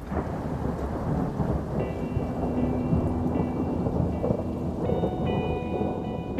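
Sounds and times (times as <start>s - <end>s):
deep rumble of thunder: 0.0s - 6.3s
steady dense rain pouring down: 0.0s - 6.3s.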